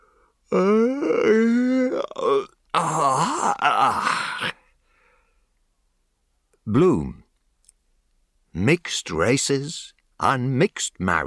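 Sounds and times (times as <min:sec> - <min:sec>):
speech: 0:00.5 - 0:01.4, 0:06.7 - 0:07.2, 0:08.6 - 0:11.2
person yawning loudly: 0:00.5 - 0:04.6.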